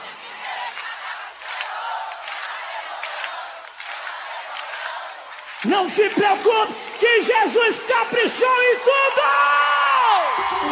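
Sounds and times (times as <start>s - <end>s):
large audience in Brazil singing together: 0.0s - 7.9s
audience hand claps: 0.5s - 6.8s
speech: 5.6s - 9.6s, 10.4s - 10.7s.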